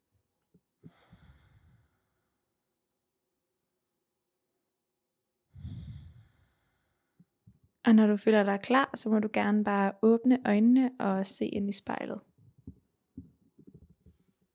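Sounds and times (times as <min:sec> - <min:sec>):
slow deep breaths with long airy exhales: 0:00.8 - 0:02.4, 0:05.5 - 0:07.4
speech: 0:07.9 - 0:12.3.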